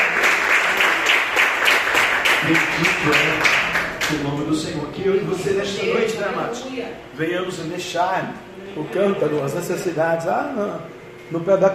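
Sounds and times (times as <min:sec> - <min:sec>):
applause from many hands at a religious gathering: 0:00.0 - 0:04.6
speech: 0:02.5 - 0:11.7.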